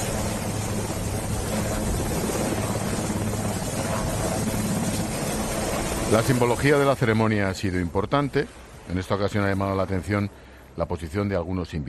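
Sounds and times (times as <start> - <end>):
presidential helicopter engine and rotors roaring: 0.0 - 8.9
speech: 6.1 - 11.8.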